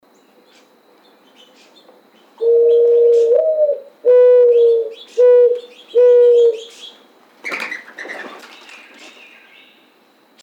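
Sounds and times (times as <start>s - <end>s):
mourning dove cooing: 2.4s - 6.9s.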